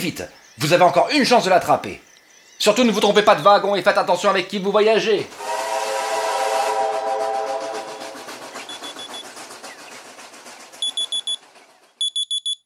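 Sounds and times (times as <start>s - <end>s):
speech: 0.0s - 5.4s
whistle-like tone: 5.4s - 12.6s
sharp high beeps: 8.7s - 9.2s, 10.9s - 11.4s, 12.0s - 12.6s
alarm clock ringing with a fast rattling trill: 10.9s - 11.4s, 12.0s - 12.6s.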